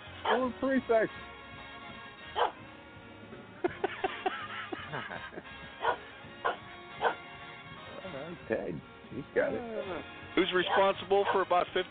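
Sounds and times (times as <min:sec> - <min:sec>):
dog barking: 0:00.2 - 0:00.5, 0:02.4 - 0:02.6, 0:05.8 - 0:07.2, 0:10.6 - 0:11.5
speech: 0:00.2 - 0:01.4, 0:04.9 - 0:05.9, 0:08.2 - 0:11.9
laughter: 0:03.6 - 0:05.8.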